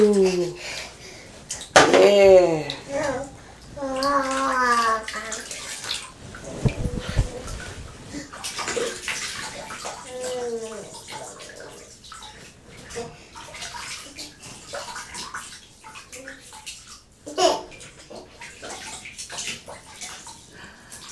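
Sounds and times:
water splashing and sloshing in a bathtub: 0.0 - 21.1
young child babbling and chattering: 2.9 - 5.5, 10.0 - 11.0.

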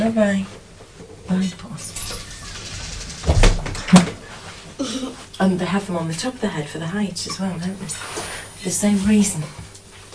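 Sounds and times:
speech: 0.0 - 0.6, 1.3 - 2.0, 5.4 - 9.7
wooden door clunks as a door is opened to let a cat out: 3.1 - 4.2.

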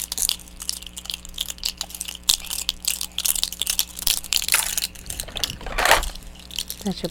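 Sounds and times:
plastic cup being chewed and squeezed: 0.0 - 7.0
speech: 6.8 - 7.0.

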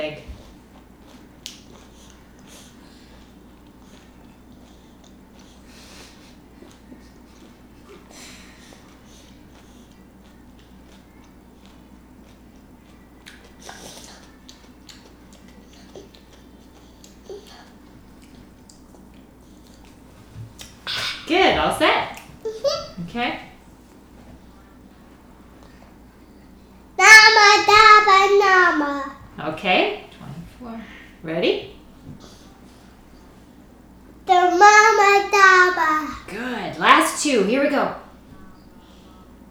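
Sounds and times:
low hum: 0.0 - 39.4
person chewing a bite of food: 0.4 - 21.2
speech: 21.3 - 22.1.

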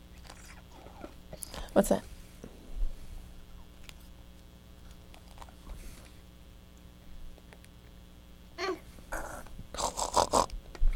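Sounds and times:
speech: 1.8 - 2.1
voice imitating pig snorts: 9.1 - 10.5.

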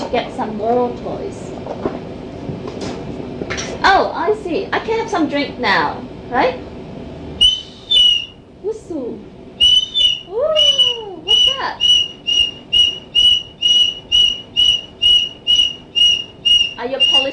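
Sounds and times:
speech: 0.1 - 2.0, 3.8 - 6.7
whistle blown in short sharp shrill blasts: 7.4 - 8.4, 9.6 - 17.3.

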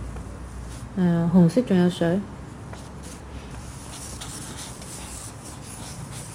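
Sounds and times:
speech: 1.0 - 2.4
pen scribbling across paper: 3.7 - 6.3.

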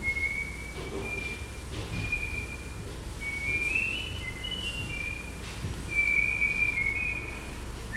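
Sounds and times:
person whistling a wandering tune: 0.0 - 7.9.

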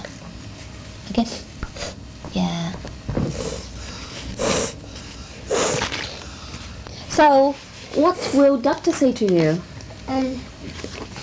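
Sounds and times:
speech: 1.1 - 1.4, 7.2 - 10.6
snuffly breath: 3.3 - 6.8
sniffling from a runny nose: 3.4 - 6.5.

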